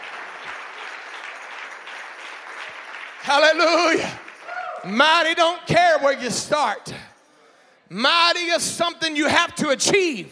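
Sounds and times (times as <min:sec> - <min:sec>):
crowd clapping: 0:00.0 - 0:05.4
speech: 0:03.2 - 0:04.2, 0:04.8 - 0:07.1, 0:07.9 - 0:10.3.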